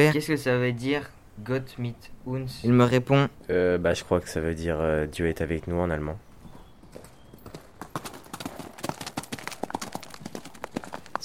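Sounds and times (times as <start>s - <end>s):
speech: 0.0s - 6.3s
several horses' hooves pounding hard ground: 6.3s - 11.2s.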